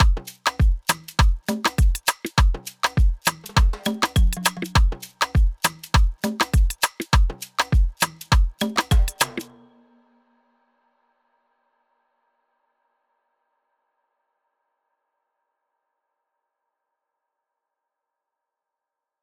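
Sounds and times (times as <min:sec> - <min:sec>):
full drum kit loop at 101 bpm: 0:00.0 - 0:09.5.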